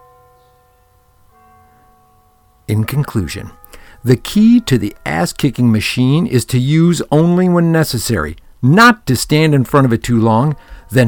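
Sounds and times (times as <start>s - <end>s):
bells ringing: 0.0s - 7.4s
speech: 2.7s - 11.0s.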